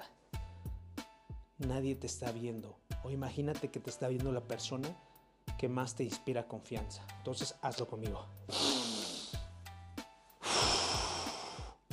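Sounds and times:
speech: 1.6s - 8.6s
deep slow inhale and exhale: 8.5s - 9.6s, 10.4s - 11.9s.

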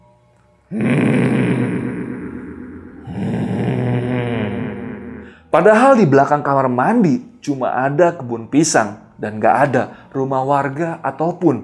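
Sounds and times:
speech: 0.7s - 1.3s, 5.5s - 11.6s
person growling low and guttural: 0.7s - 5.4s.

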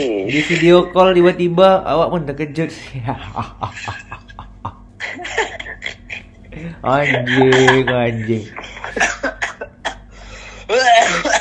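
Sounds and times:
speech: 0.0s - 4.2s, 6.6s - 9.1s
laughter: 3.0s - 9.8s
person coughing: 9.0s - 10.1s, 10.7s - 11.3s
person clearing a rough throat: 10.7s - 11.3s.

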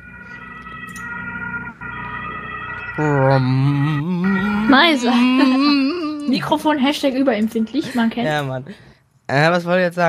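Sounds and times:
ambulance siren wailing outside: 0.0s - 7.3s
speech: 3.0s - 10.0s
laughter: 3.8s - 6.6s.

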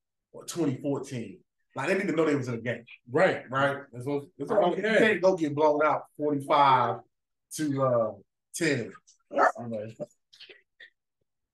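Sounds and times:
speech: 0.4s - 10.6s
dog short yelp: 9.3s - 9.6s.

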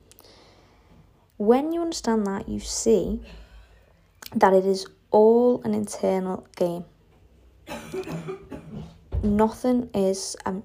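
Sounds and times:
speech: 1.4s - 3.4s, 4.3s - 6.9s, 9.2s - 10.6s
ill woman coughing harsh and chesty: 7.7s - 8.9s.

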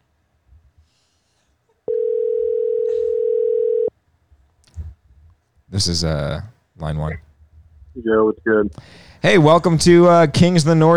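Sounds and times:
electronic telephone ringing tone: 1.9s - 3.9s
speech: 5.7s - 7.3s, 8.0s - 10.9s.

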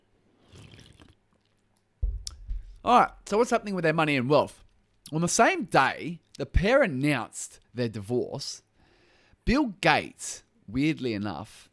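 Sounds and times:
sipping and swallowing water: 0.4s - 1.6s
low thump: 2.0s - 2.9s
speech: 2.8s - 8.6s, 9.5s - 11.7s.

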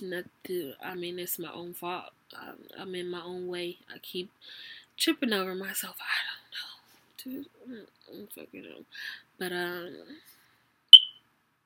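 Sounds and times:
speech: 0.0s - 10.4s
smoke detector chirp: 10.9s - 11.2s.

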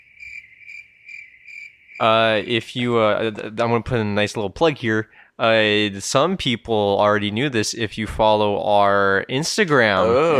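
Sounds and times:
crickets chirping in a steady rhythmic trill: 0.0s - 2.7s
speech: 2.0s - 10.3s.

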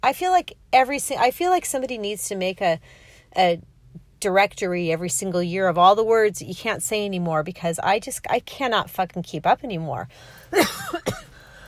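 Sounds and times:
speech: 0.0s - 11.3s
coughing: 10.5s - 11.5s.

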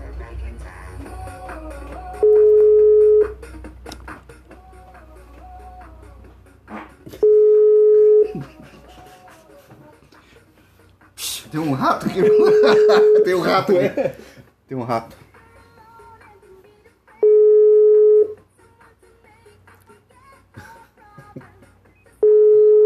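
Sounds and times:
telephone ringback tone on a live call: 2.2s - 3.4s, 7.2s - 8.3s, 12.6s - 13.3s, 17.2s - 18.4s, 22.2s - 22.8s
laughter: 8.2s - 9.8s, 11.8s - 14.4s
speech: 11.6s - 15.2s.

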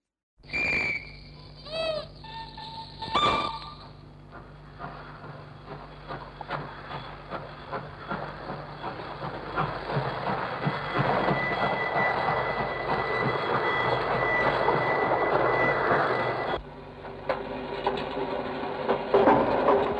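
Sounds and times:
short train whistle blasts at a railway station: 0.5s - 1.6s, 2.5s - 3.9s
train metallic squeals: 0.5s - 4.0s, 10.6s - 16.6s
moving train wheels clattering at a railway station: 2.8s - 19.9s.

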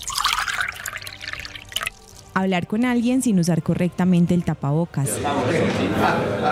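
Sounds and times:
liquid sloshing and gurgling inside a shared bottle: 0.0s - 2.3s
speech: 2.4s - 6.5s.

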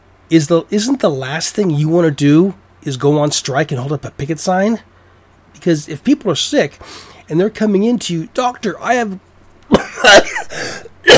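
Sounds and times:
speech: 0.3s - 4.9s, 5.5s - 11.1s
man's voice imitating a cough: 9.7s - 11.1s.

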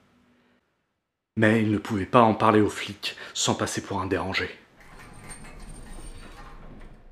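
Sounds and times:
speech: 1.4s - 4.6s
elevator doors sliding open with a mechanical whir: 4.8s - 7.1s.

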